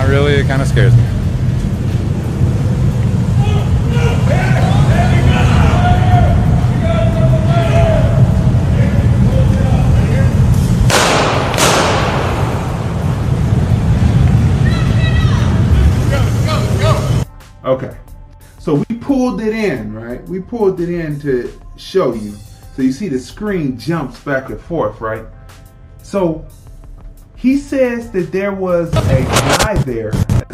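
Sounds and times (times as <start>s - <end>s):
engines revving over a low rumble: 0.0s - 17.3s
speech: 0.4s - 1.2s, 19.4s - 25.4s, 26.1s - 26.6s, 27.4s - 30.3s
sharp rushing bursts: 0.6s - 17.2s.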